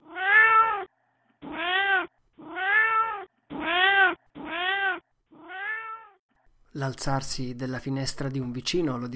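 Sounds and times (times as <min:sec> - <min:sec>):
cat in heat yowling mournfully: 0:00.0 - 0:06.2
speech: 0:06.8 - 0:09.1.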